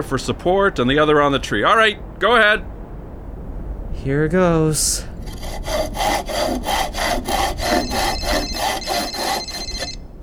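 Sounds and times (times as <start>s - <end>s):
speech: 0.0s - 2.8s, 4.0s - 7.0s
hand saw cutting through a tree trunk: 5.2s - 10.0s.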